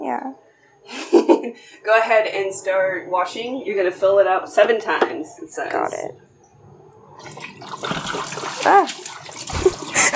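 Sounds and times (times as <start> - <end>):
speech: 0.2 - 6.3, 8.6 - 9.1
water spilling and splashing over a person: 7.1 - 10.1.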